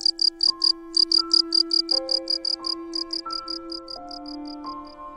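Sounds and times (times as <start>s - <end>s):
crickets chirping in a box: 0.0s - 5.0s.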